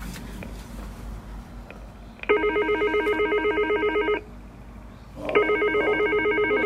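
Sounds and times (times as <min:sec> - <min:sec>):
telephone ringing on an outgoing call: 0:02.3 - 0:04.3, 0:05.3 - 0:06.6.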